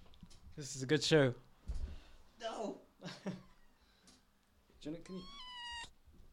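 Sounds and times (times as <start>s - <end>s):
speech: 0.6s - 1.5s, 2.4s - 3.5s, 4.8s - 5.4s
kitten meowing: 5.0s - 6.0s.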